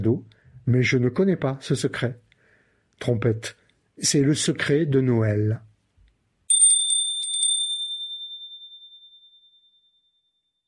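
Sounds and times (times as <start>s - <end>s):
speech: 0.0s - 2.2s, 3.0s - 5.7s
chime ringing: 6.5s - 10.2s.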